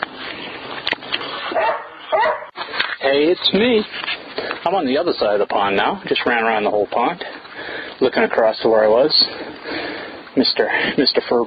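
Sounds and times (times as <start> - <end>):
border collie barking and yipping by a pond: 1.4 - 2.6
speech: 3.1 - 7.4, 8.0 - 9.5, 10.4 - 11.4.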